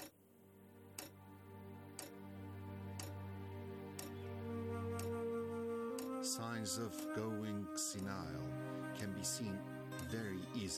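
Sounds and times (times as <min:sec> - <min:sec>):
continuous low humming drone: 0:00.3 - 0:10.7
clock ticking: 0:01.0 - 0:01.2, 0:01.9 - 0:02.2, 0:03.0 - 0:03.2, 0:03.9 - 0:04.2, 0:05.0 - 0:05.2, 0:05.9 - 0:07.2, 0:07.8 - 0:08.2, 0:10.0 - 0:10.2
speech: 0:06.3 - 0:10.7.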